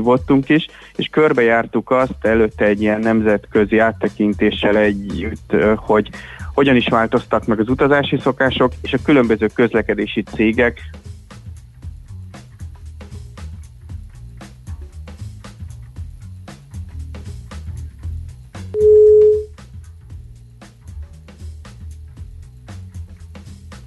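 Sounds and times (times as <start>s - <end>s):
speech: 0.0s - 11.0s
low rhythmic murmur of music: 0.0s - 23.8s
telephone busy tone as a phone call drops: 18.8s - 19.5s.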